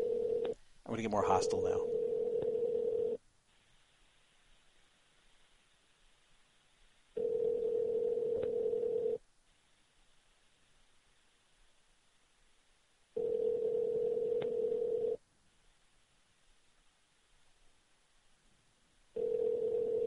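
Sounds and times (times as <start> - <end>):
phone ringback tone on an outgoing call: 0.0 - 0.6, 1.8 - 3.2, 7.2 - 9.2, 13.2 - 15.2, 19.2 - 20.0
speech: 1.0 - 2.0.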